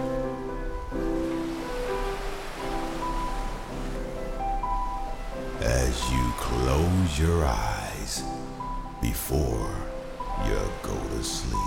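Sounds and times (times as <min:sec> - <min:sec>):
ocean waves: 0:00.0 - 0:11.6
soft sustained musical tones: 0:00.0 - 0:11.6
speech: 0:06.0 - 0:08.4, 0:09.0 - 0:11.6.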